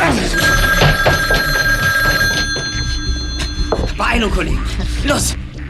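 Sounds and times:
telephone ringing: 0.1s - 4.3s
speech: 4.3s - 5.5s.

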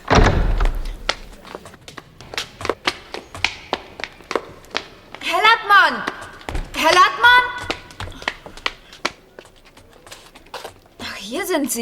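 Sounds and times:
door swinging open with a low thud and rumble: 0.0s - 1.4s
quick steady run of sharp footsteps or taps: 0.0s - 11.7s.

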